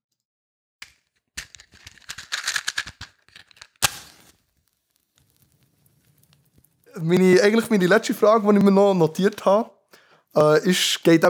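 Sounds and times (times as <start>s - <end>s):
crackling campfire: 4.2s - 8.0s
speech: 7.0s - 11.2s.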